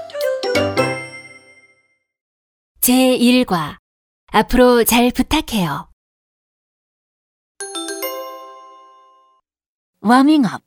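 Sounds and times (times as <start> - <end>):
doorbell ding-dong chime: 0.0 - 2.0, 7.6 - 9.4
speech: 2.9 - 5.9, 10.0 - 10.6.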